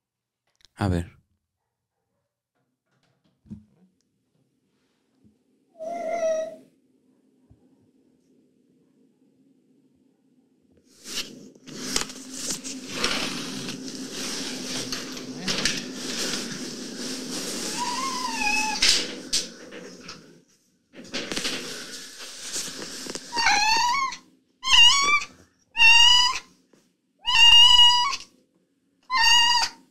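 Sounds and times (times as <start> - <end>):
speech: 0.8 - 1.2
rustling and scuffling: 11.0 - 24.2
cat yowling in pain: 17.7 - 18.8, 23.3 - 26.5, 27.2 - 28.3, 29.1 - 29.8.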